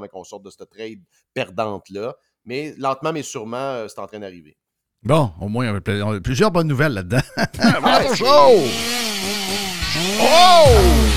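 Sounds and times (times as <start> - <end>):
speech: 0.0 - 11.1
laughter: 7.0 - 8.8
chainsaw engine revving: 7.9 - 11.1.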